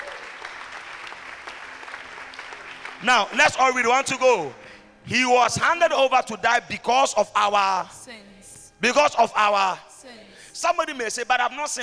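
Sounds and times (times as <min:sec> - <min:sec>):
audience applause during a sermon: 0:00.0 - 0:03.4
speech: 0:03.0 - 0:09.9, 0:10.6 - 0:11.8.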